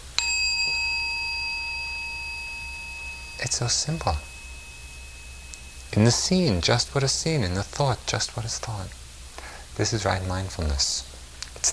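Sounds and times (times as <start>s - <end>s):
meditation bell struck once: 0.0s - 7.1s
speech: 3.5s - 4.3s, 6.0s - 9.0s, 9.8s - 11.7s.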